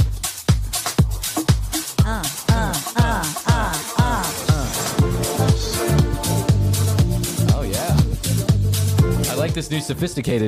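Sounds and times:
techno-style club lounge music: 0:00.0 - 0:09.6
deep bass: 0:04.0 - 0:09.6
speech: 0:09.6 - 0:10.4.

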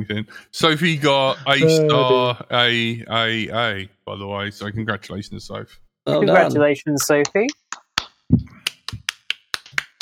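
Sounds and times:
speech: 0:00.0 - 0:07.6
sharp hand claps: 0:07.0 - 0:10.0.

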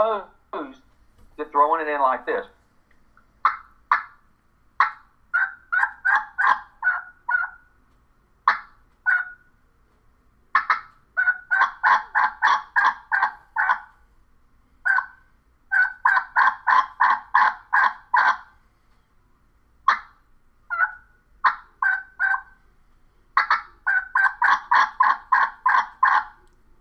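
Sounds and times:
speech: 0:00.0 - 0:00.7, 0:01.5 - 0:02.6
turkey call sharp single clucks: 0:03.4 - 0:07.7, 0:08.4 - 0:09.5, 0:10.5 - 0:14.0, 0:14.8 - 0:18.6, 0:19.9 - 0:22.6, 0:23.4 - 0:26.5.

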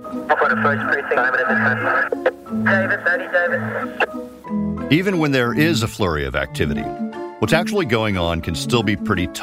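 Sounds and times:
speech: 0:00.2 - 0:09.4
garbled police voices over a police scanner radio: 0:00.3 - 0:04.1.

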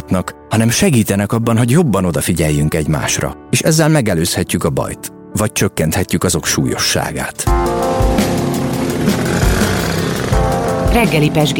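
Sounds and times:
speech: 0:00.1 - 0:07.8, 0:10.9 - 0:11.5
city bus engine droning: 0:07.8 - 0:11.5.

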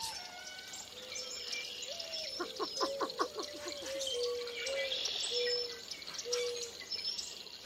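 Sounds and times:
boat-tailed grackles calling harshly from thickets at Lacassine Pool: 0:00.0 - 0:06.8
outdoor background at Lacassine Pool national wildlife refuge: 0:00.0 - 0:07.6.

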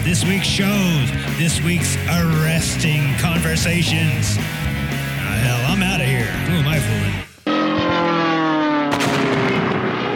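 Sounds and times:
speech: 0:00.0 - 0:04.7, 0:05.3 - 0:07.2
roaring whining aircraft engine with descending tones: 0:06.9 - 0:10.1
explosive plane crash impact: 0:08.9 - 0:10.1.

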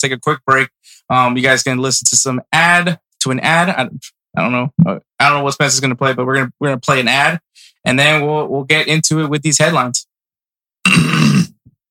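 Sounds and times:
speech: 0:00.0 - 0:10.1, 0:10.8 - 0:11.6
throat clearing: 0:10.9 - 0:11.6.

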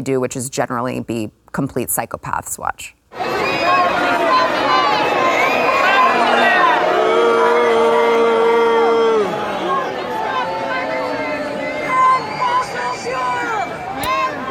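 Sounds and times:
speech: 0:00.0 - 0:03.0
large crowd booing and shouting: 0:03.1 - 0:14.4.

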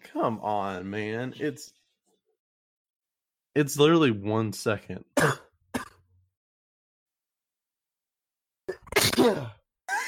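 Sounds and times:
speech: 0:00.2 - 0:01.8, 0:03.6 - 0:05.4
person sneezing loudly: 0:08.8 - 0:10.0.

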